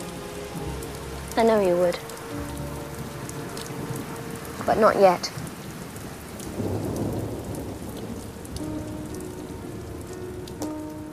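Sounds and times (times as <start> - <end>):
steady rain: 0.0 - 11.1
low rumble of thunder: 0.6 - 11.1
speech: 1.4 - 2.6, 4.7 - 5.4.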